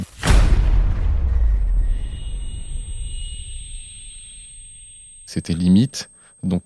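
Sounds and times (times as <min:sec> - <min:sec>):
detonated plastic explosive charge blast with deep rumble: 0:00.1 - 0:03.0
faint high whine: 0:01.2 - 0:06.6
speech: 0:05.3 - 0:06.6.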